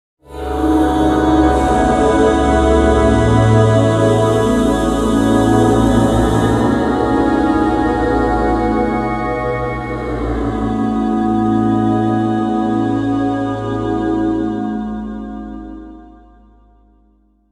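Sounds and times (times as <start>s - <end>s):
airy vocal synth shine: 0.2s - 16.7s.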